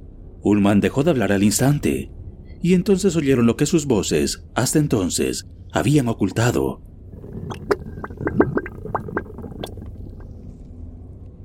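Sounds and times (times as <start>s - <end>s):
speech: 0.4s - 7.5s
faint sinister gurgling growl: 7.1s - 10.4s.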